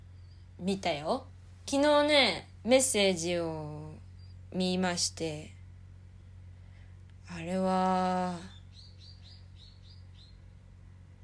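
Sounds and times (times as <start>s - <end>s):
bird chirping in short high rising notes: 0.0s - 0.7s, 4.0s - 4.6s, 8.2s - 10.6s
steady low hum: 0.0s - 11.2s
speech: 0.6s - 3.9s, 4.5s - 5.6s, 7.3s - 8.5s.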